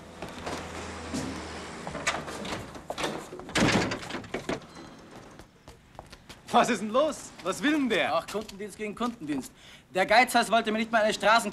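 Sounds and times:
faint noise: 0.0 - 11.5
door pushed shut with heavy thud: 2.0 - 4.7
speech: 6.5 - 11.5.

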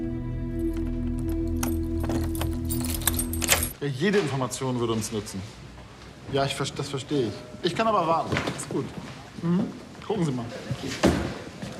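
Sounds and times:
keys jangling: 0.6 - 3.8
speech: 3.8 - 5.6, 6.3 - 11.4.

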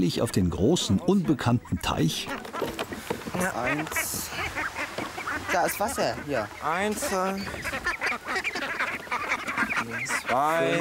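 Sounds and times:
speech: 0.0 - 2.8, 3.4 - 4.6, 5.5 - 7.9, 10.0 - 10.7
ducks quacking near water: 0.0 - 10.7.

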